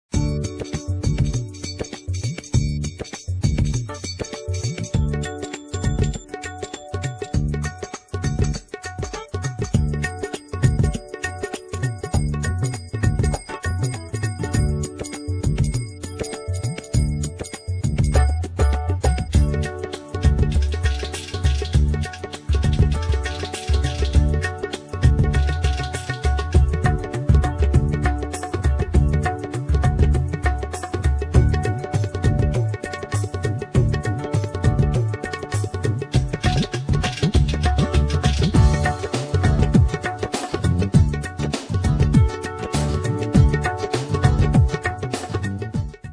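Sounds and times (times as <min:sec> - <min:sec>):
Indian drum kit on a keyboard: 0:00.1 - 0:46.1.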